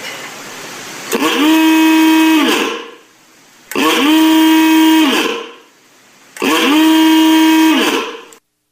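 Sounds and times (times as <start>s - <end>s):
ooga horn on a truck blaring: 1.1s - 3.0s, 3.7s - 5.6s, 6.4s - 8.4s.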